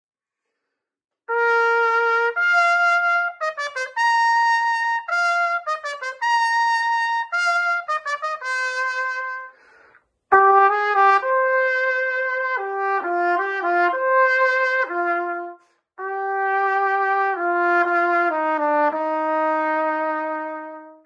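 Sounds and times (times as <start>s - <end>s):
trumpet: 1.2s - 21.0s.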